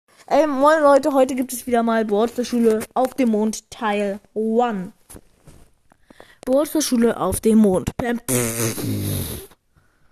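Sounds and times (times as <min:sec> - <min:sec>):
speech: 0:00.3 - 0:05.2, 0:06.4 - 0:09.5
loud buzzy fart: 0:08.3 - 0:09.6.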